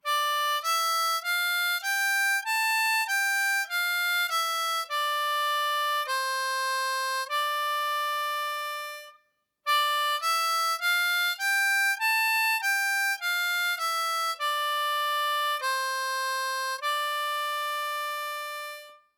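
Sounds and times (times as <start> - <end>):
blues harp single note exercise in D minor: 0.0 - 19.1.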